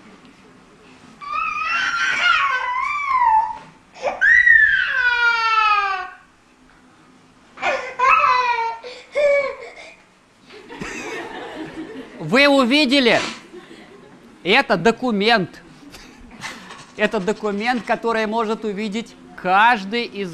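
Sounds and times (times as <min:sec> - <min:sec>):
child crying in loud wailing bursts: 0:01.2 - 0:06.3, 0:07.6 - 0:10.0
laughter: 0:10.5 - 0:12.4, 0:13.4 - 0:14.4
speech: 0:12.6 - 0:13.4, 0:14.4 - 0:15.6, 0:17.0 - 0:20.3.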